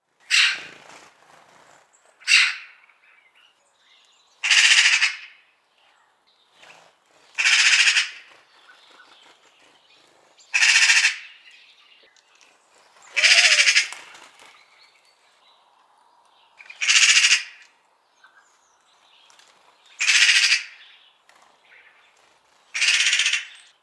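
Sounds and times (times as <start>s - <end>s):
magpie calling: 0.2s - 0.7s, 2.2s - 3.2s, 4.4s - 5.5s, 7.4s - 8.8s, 10.5s - 12.2s, 13.0s - 14.1s, 16.6s - 17.7s, 20.0s - 21.0s, 22.7s - 23.7s.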